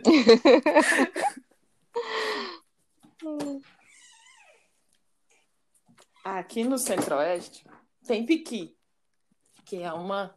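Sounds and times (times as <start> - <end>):
laughter: 0.0 - 1.4
speech: 0.1 - 1.4, 6.5 - 8.8, 9.6 - 10.3
dog whining: 3.8 - 4.7.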